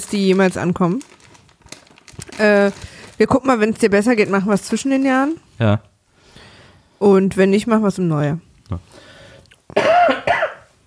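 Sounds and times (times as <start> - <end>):
speech: 0.1 - 1.1, 2.4 - 5.9, 7.0 - 9.1
person coughing roughly: 9.7 - 10.7.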